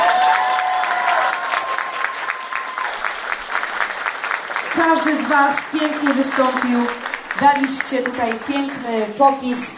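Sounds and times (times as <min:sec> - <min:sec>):
audience applauding for the singers: 0:00.0 - 0:09.7
speech: 0:04.8 - 0:09.7.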